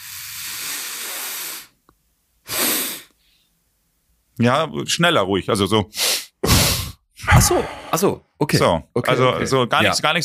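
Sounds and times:
long inhalations through the nose in a breathing exercise: 0.0 - 1.8, 2.5 - 3.5, 6.0 - 7.0
speech: 4.4 - 6.1, 7.4 - 10.2.

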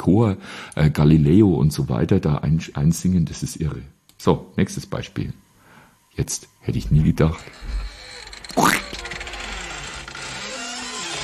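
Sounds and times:
speech: 0.0 - 5.4, 6.2 - 7.9
steady low hum: 0.0 - 10.1
hiss: 0.0 - 11.2
short raspy creak: 7.3 - 11.2.

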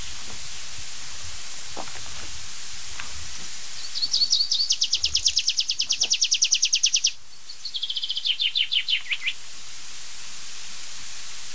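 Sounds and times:
tree pipit singing during display flight: 3.6 - 9.4.

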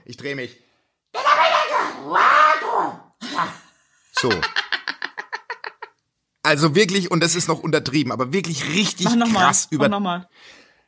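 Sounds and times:
speech: 0.1 - 0.7, 2.0 - 3.6, 4.2 - 4.6, 6.5 - 10.6
voice imitating a person screaming: 1.2 - 3.7
laughter: 4.2 - 6.0.

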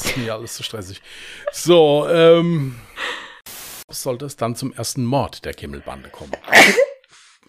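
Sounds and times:
speech: 0.2 - 3.1, 3.9 - 6.9
person sneezing: 6.4 - 7.0.

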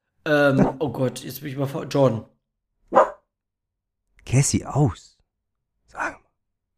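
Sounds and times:
speech: 0.2 - 2.3, 4.3 - 5.2
dog barking: 2.9 - 3.3, 6.0 - 6.2.

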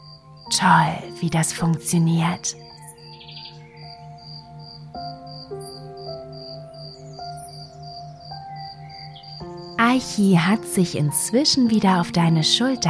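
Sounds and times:
grasshopper chirping by vibrating its wings: 0.0 - 11.4
sustained droning musical tones: 0.0 - 12.8
speech: 0.5 - 2.7, 10.0 - 12.8.

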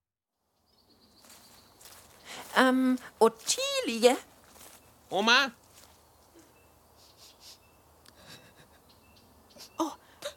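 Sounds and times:
speech: 2.6 - 4.3, 5.1 - 5.6
person crying and sobbing with soft whimpering moans: 9.6 - 10.3.

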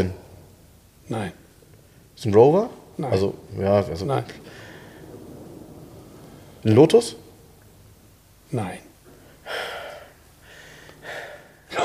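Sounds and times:
speech: 0.0 - 0.2, 1.1 - 1.4, 2.2 - 4.6, 6.6 - 7.2, 8.5 - 8.9
heavy rasping breathing: 4.4 - 5.2, 9.3 - 11.7.

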